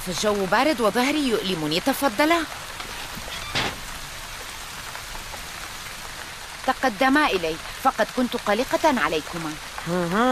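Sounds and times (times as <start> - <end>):
speech: 0.0 - 2.9, 6.8 - 10.3
steady rain falling: 0.0 - 10.3.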